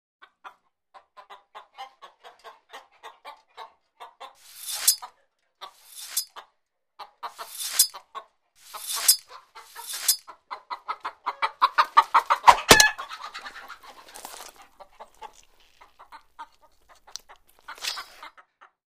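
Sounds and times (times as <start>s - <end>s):
chickens in chicken coop: 0.2s - 18.8s
knife sharpening: 4.4s - 5.1s, 5.8s - 6.3s, 7.4s - 8.0s, 8.6s - 10.2s, 17.7s - 18.2s.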